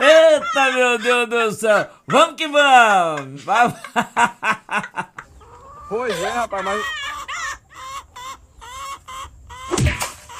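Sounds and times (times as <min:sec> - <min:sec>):
laughter: 0:00.0 - 0:01.3, 0:03.4 - 0:05.3
speech: 0:00.5 - 0:05.1, 0:05.9 - 0:07.1
chicken clucking: 0:03.1 - 0:10.3.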